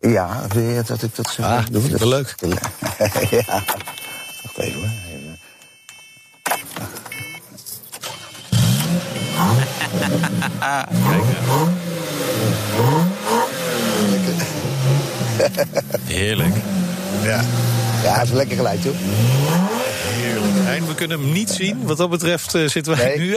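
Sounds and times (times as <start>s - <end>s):
speech: 0.0s - 3.9s, 4.5s - 5.0s, 10.0s - 11.8s, 15.4s - 19.7s, 20.3s - 23.3s
laughter: 1.5s - 4.9s, 9.4s - 11.7s, 14.1s - 16.7s
car engine cranking, catching and revving: 8.0s - 22.2s.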